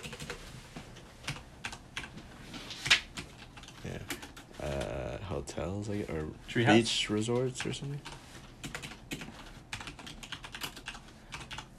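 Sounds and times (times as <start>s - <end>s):
rapid clicky computer keyboard typing: 0.0s - 2.2s, 2.8s - 5.0s, 7.1s - 11.7s
speech: 5.4s - 8.2s.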